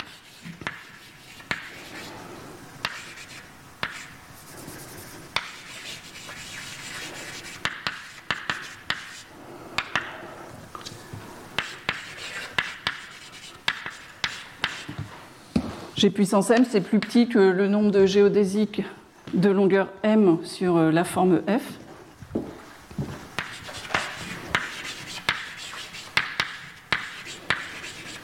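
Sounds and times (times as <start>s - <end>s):
writing on a board during a mathematics lecture: 0.0s - 2.1s, 2.8s - 10.2s, 11.6s - 15.2s, 23.1s - 28.2s
speech: 16.0s - 21.8s.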